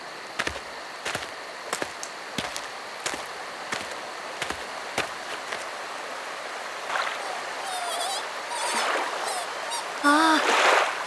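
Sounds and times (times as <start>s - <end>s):
flowing stream water rushing: 0.6s - 11.0s
high chirping: 7.2s - 10.4s.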